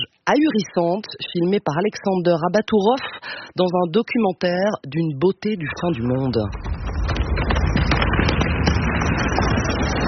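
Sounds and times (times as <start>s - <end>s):
speech: 0.3s - 6.6s
forest fire burning and crackling: 6.0s - 10.0s.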